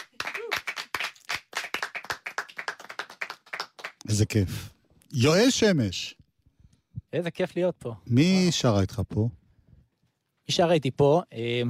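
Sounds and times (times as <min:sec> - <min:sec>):
band bass players clapping hands: 0:00.0 - 0:04.3
speech: 0:04.1 - 0:06.2, 0:07.1 - 0:09.4, 0:10.5 - 0:11.6.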